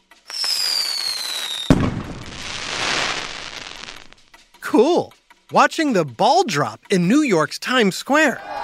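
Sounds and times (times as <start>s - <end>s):
firework rocket whistling upward: 0.3s - 4.2s
speech: 4.7s - 8.5s.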